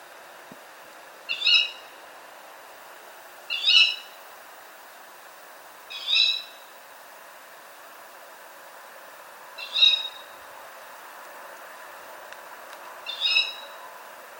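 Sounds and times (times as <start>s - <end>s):
young tawny owl: 1.3s - 1.9s, 3.5s - 4.2s, 5.9s - 6.6s, 9.6s - 10.4s, 13.0s - 13.8s.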